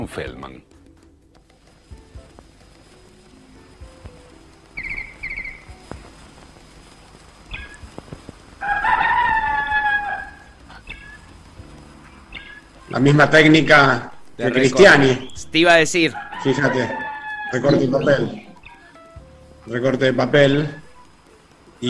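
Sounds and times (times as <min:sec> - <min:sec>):
speech: 0:00.0 - 0:00.8, 0:12.9 - 0:18.4, 0:19.7 - 0:20.8
rooster crowing in a paper cut-out animated film: 0:08.5 - 0:11.3, 0:16.0 - 0:19.0.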